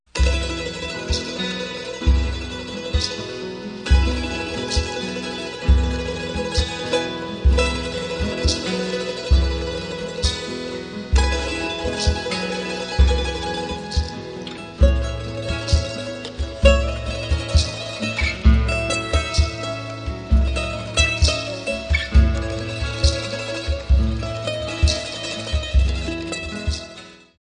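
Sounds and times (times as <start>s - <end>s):
andean music: 0.1s - 27.3s.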